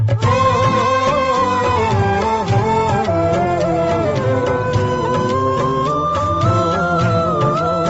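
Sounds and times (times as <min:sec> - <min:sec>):
sad Indian music: 0:00.1 - 0:07.8.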